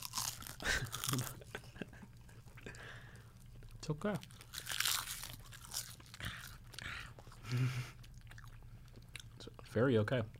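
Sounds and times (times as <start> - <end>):
crunching and chewing of a brittle seaweed snack: 0.0 - 1.4, 3.4 - 9.6
speech: 1.1 - 1.4, 3.9 - 4.3, 7.5 - 8.0, 9.8 - 10.3.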